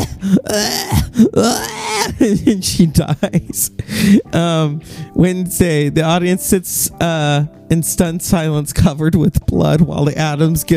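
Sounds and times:
voice imitating gasping and choking: 0.0s - 2.6s
speech: 0.2s - 10.7s.

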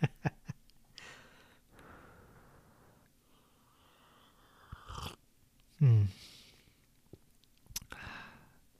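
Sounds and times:
breathing: 1.0s - 4.9s, 7.9s - 8.6s
person sipping hot ginger tea: 4.6s - 5.2s.

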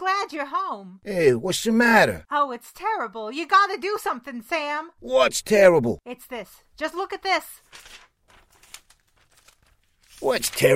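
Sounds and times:
speech: 0.2s - 8.0s, 10.2s - 10.7s
pad of paper crinkling and rustling as it is handled: 7.6s - 10.7s.

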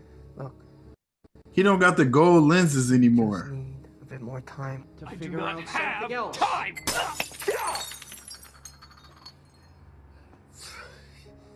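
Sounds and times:
speech: 0.4s - 0.6s, 1.6s - 3.6s, 4.4s - 7.8s
glass clinks in a movie scene: 6.7s - 9.9s
faint high glassy tinkle: 6.8s - 9.9s.

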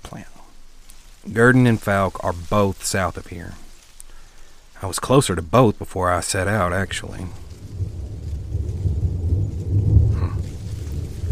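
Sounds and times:
faint hiss of rain: 0.0s - 11.3s
speech: 1.2s - 3.6s, 4.8s - 7.4s
thunder rumbling: 6.2s - 11.3s.

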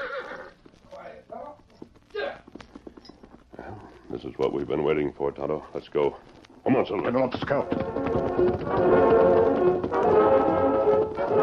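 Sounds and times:
horse whinnying at a corral: 0.0s - 0.6s
horse hooves clip-clopping: 0.0s - 11.4s
speech: 4.1s - 11.4s.

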